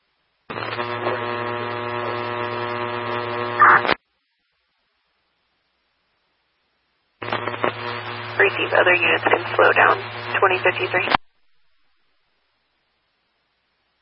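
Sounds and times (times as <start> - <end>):
buzzy radio static with a droning humming tone: 0.5 - 4.0, 7.2 - 11.2
speech: 8.6 - 11.2.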